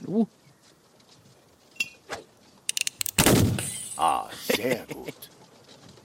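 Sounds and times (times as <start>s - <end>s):
speech: 0.1s - 0.4s, 4.6s - 5.4s
gunshots fired at a person: 3.0s - 3.8s.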